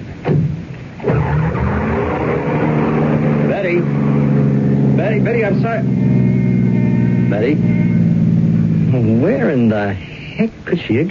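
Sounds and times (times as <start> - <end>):
car engine running as the vehicle pulls off: 0.0 - 10.5
thump: 0.2 - 1.2
speech: 5.2 - 6.3, 7.3 - 7.9, 8.9 - 11.0.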